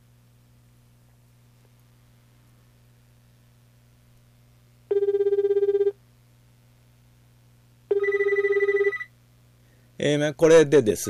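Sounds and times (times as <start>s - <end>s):
low steady hum: 0.0s - 11.0s
telephone ringback tone over a phone's speakerphone: 4.9s - 6.0s, 7.9s - 9.1s
speech: 10.0s - 11.0s.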